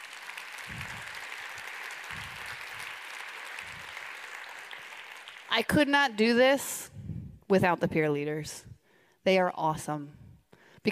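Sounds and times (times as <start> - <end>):
room full of people applauding the peer leaders: 0.0 - 5.6
speech: 5.6 - 10.2.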